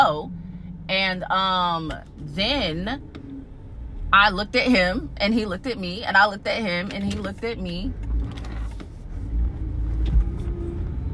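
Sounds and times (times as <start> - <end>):
car engine idling while maneuvering out of a tight parking spot: 0.0 - 11.1
speech: 1.0 - 3.3, 4.1 - 8.0.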